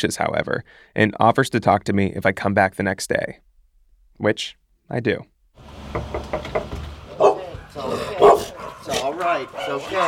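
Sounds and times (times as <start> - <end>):
speech: 0.0 - 3.5, 4.2 - 5.3, 9.2 - 10.0
knocking-like thuds: 5.6 - 7.8
several dogs barking including a small dog and a large pit bull mix: 7.1 - 10.0.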